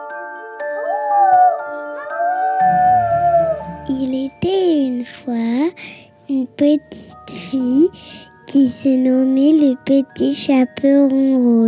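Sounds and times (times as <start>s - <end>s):
voice imitating a wolf's howl: 0.7s - 3.7s
steady tonal backdrop: 0.8s - 10.0s
speech: 3.9s - 11.6s.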